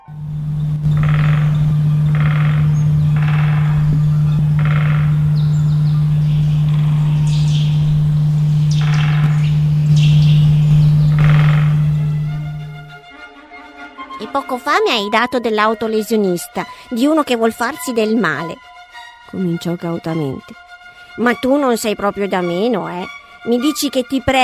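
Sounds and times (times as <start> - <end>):
bird chirps: 0.0 - 12.9
woodpecker drumming on a branch: 0.0 - 12.9
low electrical hum: 0.0 - 13.0
speech: 14.8 - 18.7, 19.3 - 20.6, 21.2 - 24.4.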